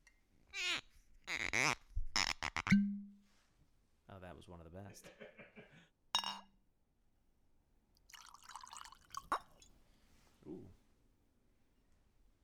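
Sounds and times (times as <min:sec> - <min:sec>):
cork squeaking out of a bottle: 0:00.6 - 0:03.0
speech: 0:04.4 - 0:05.9
laughter: 0:04.9 - 0:05.8
glass clinking: 0:06.2 - 0:06.5, 0:08.1 - 0:09.7
drink splashing and gurgling into a glass: 0:08.0 - 0:09.7.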